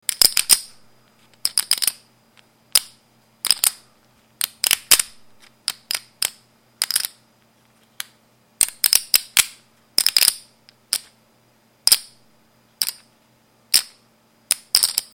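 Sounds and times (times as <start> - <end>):
poker chips clinking in a casino: 0.1 - 2.0, 2.7 - 3.8, 4.4 - 7.2, 8.6 - 11.1, 13.7 - 15.1.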